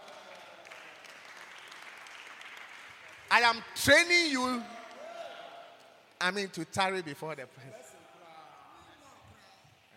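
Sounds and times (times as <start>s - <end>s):
congregation clapping: 0.0s - 3.7s
speech: 3.3s - 4.8s, 6.2s - 7.9s.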